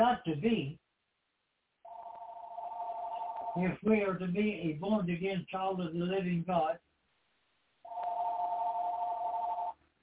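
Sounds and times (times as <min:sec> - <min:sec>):
speech: 0:00.0 - 0:00.8, 0:03.6 - 0:06.8
telephone ringing with one steady electronic tone: 0:01.9 - 0:03.7, 0:07.9 - 0:09.8.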